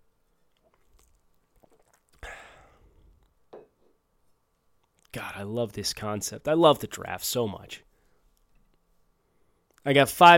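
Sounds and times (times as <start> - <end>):
breathy swallow: 0.5 - 3.3
person slurping a drink: 0.6 - 3.2
speech: 5.2 - 7.9, 9.8 - 10.3.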